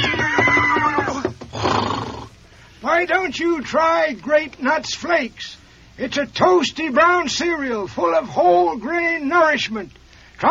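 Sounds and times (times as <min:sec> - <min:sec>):
horse whinnying: 0:00.0 - 0:02.4
speech: 0:03.0 - 0:10.4.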